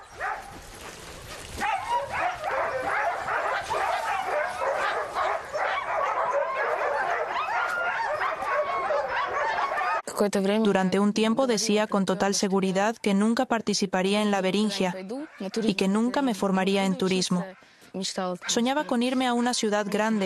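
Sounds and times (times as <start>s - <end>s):
pack of sled dogs barking, yelping and whimpering: 0.0s - 10.1s, 15.0s - 15.9s, 18.4s - 20.2s
speech: 10.2s - 20.2s.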